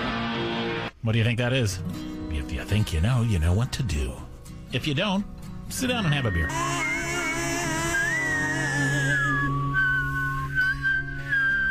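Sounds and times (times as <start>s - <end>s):
speech: 1.0s - 6.8s
steady musical backing: 1.8s - 11.6s
whistled melody in a song: 5.9s - 11.6s.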